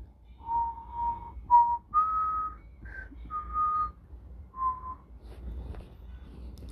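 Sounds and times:
low rumble: 0:00.0 - 0:06.7
person whistling a tune imitating a wolf character's whistle: 0:00.3 - 0:05.1.

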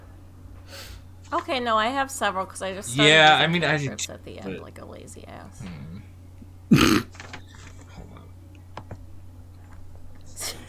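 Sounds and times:
low steady hum: 0:00.0 - 0:10.6
speech: 0:01.3 - 0:06.1, 0:06.7 - 0:07.3
soft hiccups: 0:06.7 - 0:07.1.

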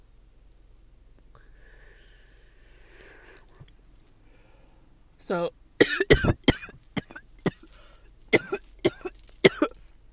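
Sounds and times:
speech: 0:05.3 - 0:05.6
person coughing away from the microphone: 0:05.8 - 0:09.8.

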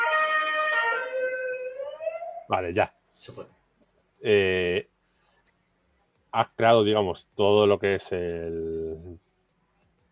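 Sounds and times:
emergency vehicle siren wailing outside: 0:00.0 - 0:02.6
speech: 0:02.5 - 0:03.6, 0:04.2 - 0:04.9, 0:06.3 - 0:09.3.

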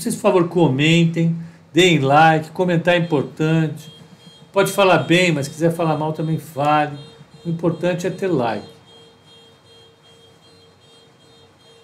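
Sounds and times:
speech: 0:00.0 - 0:03.9, 0:04.5 - 0:08.7
car alarm blaring: 0:02.8 - 0:11.8.

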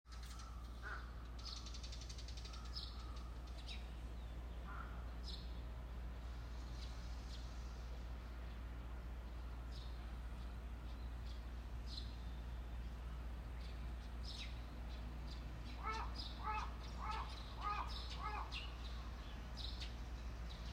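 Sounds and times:
morning birdsong in Nishinomiya Japan: 0:00.1 - 0:20.7
steady low hum of traffic: 0:00.1 - 0:20.7
bird repeating a quick run of short calls: 0:15.8 - 0:18.7.

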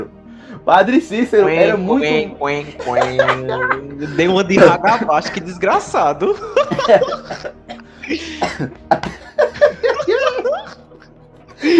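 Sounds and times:
speech: 0:00.0 - 0:09.0
laughter: 0:02.5 - 0:11.7
hacking coughs: 0:04.5 - 0:05.6, 0:06.4 - 0:11.1.

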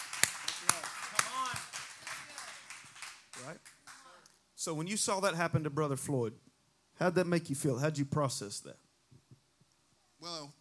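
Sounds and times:
single person clapping hands: 0:00.0 - 0:04.1
speech: 0:03.5 - 0:03.7, 0:04.6 - 0:08.8.

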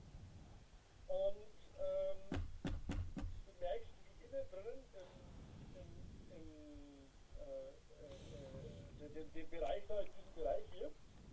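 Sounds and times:
quick sharp knocking on a door: 0:02.2 - 0:03.5
speech: 0:04.4 - 0:11.0.

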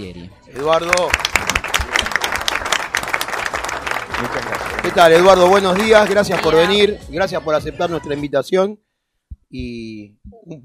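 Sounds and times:
speech: 0:00.0 - 0:01.5, 0:04.8 - 0:08.8, 0:09.5 - 0:10.6
crowd applauding to welcome a guest: 0:00.6 - 0:06.8.

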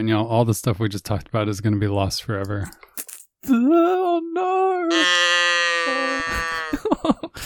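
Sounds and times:
speech: 0:00.0 - 0:06.5
cow mooing: 0:04.9 - 0:06.8.

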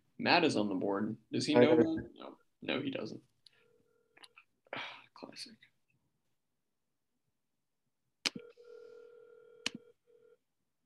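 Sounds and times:
speech: 0:00.2 - 0:03.3, 0:04.7 - 0:05.7
ringback tone of an outgoing telephone call: 0:08.4 - 0:10.4.

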